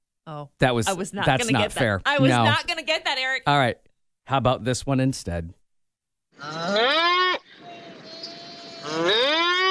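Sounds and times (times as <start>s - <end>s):
speech: 0.3s - 5.6s, 6.4s - 7.0s
ox lowing: 6.4s - 9.7s.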